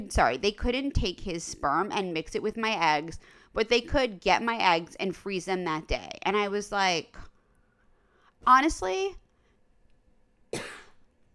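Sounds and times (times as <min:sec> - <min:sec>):
speech: 0:00.0 - 0:07.3, 0:08.4 - 0:09.2
faint sharp cough: 0:10.5 - 0:11.0.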